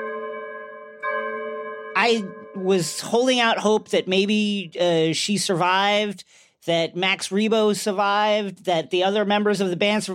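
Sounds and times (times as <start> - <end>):
bell tolling: 0.0 - 4.0
speech: 2.0 - 10.1.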